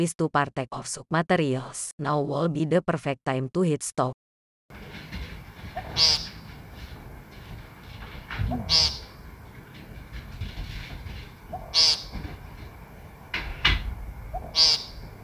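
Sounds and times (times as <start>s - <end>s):
speech: 0.0s - 4.2s, 6.0s - 6.2s
faint knocking: 4.7s - 15.2s
woodcock buzzy nasal calls: 5.8s - 6.4s, 8.4s - 9.2s, 11.5s - 12.3s, 14.3s - 15.0s.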